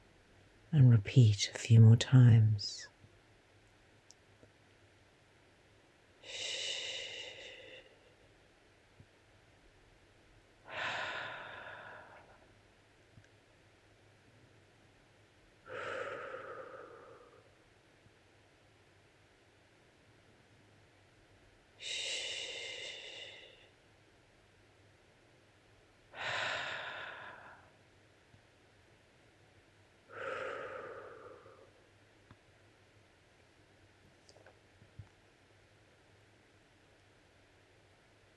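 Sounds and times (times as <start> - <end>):
faint steady hiss: 0.0 - 38.3
speech: 0.7 - 2.9
soft gentle breathing during a self-soothing meditation: 6.2 - 8.4, 10.6 - 12.7, 15.6 - 17.7, 21.8 - 23.8, 26.1 - 27.9, 30.0 - 32.4.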